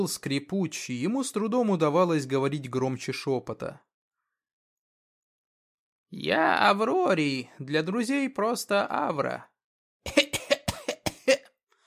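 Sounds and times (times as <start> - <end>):
speech: 0.0 - 3.9, 6.1 - 10.2
old man with a scratchy weak voice coughing: 10.1 - 11.6.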